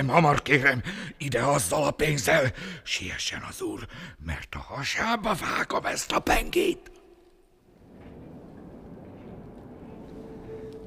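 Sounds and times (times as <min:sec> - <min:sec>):
speech: 0:00.0 - 0:07.0
late tram rumbling past: 0:07.7 - 0:10.8.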